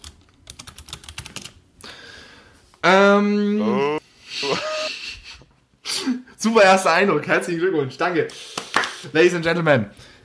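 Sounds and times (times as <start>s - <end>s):
typing on a computer keyboard: 0.0s - 1.6s
speech: 2.8s - 4.7s, 6.4s - 10.1s
laughter: 4.4s - 5.1s.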